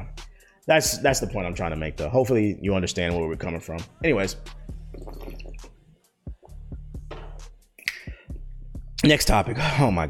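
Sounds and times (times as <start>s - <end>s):
speech: 0.7s - 5.3s, 9.0s - 10.0s
person swigging water: 4.7s - 5.8s, 7.8s - 8.3s.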